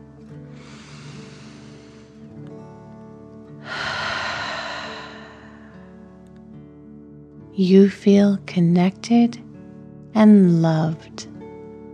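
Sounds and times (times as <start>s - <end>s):
gentle tonal music: 0.0s - 11.9s
deep slow breathing in a kids' relaxation exercise: 0.5s - 2.6s, 3.6s - 6.2s
speech: 7.6s - 9.4s, 10.2s - 11.3s.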